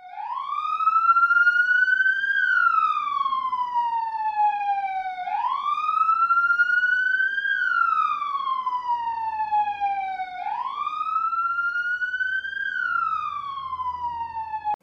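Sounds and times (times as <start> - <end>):
police car siren wailing: 0.0 - 14.8.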